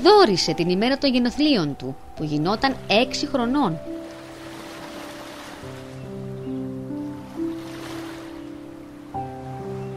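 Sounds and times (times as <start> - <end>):
speech: 0.0 - 3.9
small sea waves lapping in shallow sea water: 2.6 - 9.9.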